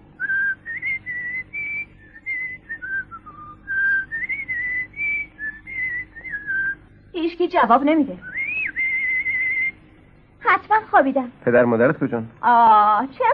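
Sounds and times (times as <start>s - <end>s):
person whistling to call friends: 0.2s - 6.8s, 8.2s - 9.8s
speech: 7.4s - 8.4s, 10.6s - 13.3s.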